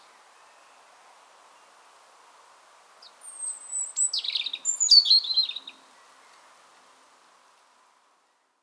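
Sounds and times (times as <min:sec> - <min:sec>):
European robin Erithacus rubecula singing: 0:03.0 - 0:05.8.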